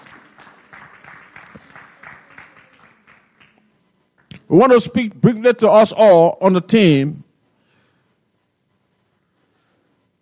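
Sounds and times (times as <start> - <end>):
audience applause: 0.0 - 4.5
speech: 4.5 - 7.2.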